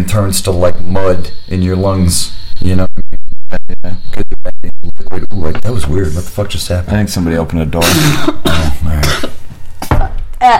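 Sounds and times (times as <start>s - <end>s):
speech: 0.1s - 4.2s, 5.1s - 9.0s
harsh breathy coughing into a microphone: 7.8s - 9.4s.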